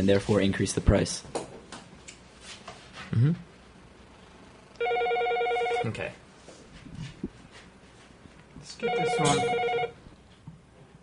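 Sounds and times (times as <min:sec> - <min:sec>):
speech: 0:00.0 - 0:01.4, 0:03.1 - 0:03.5, 0:05.8 - 0:06.2, 0:08.7 - 0:09.9
telephone ringing with an incoming call: 0:04.8 - 0:05.9, 0:08.8 - 0:10.0.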